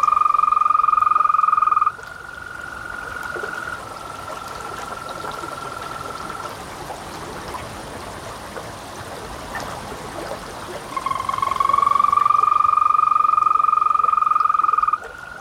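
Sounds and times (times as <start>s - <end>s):
green toads giving long musical trills near shallow water: 0.0s - 6.5s, 10.9s - 15.3s
trickling water: 0.0s - 15.3s.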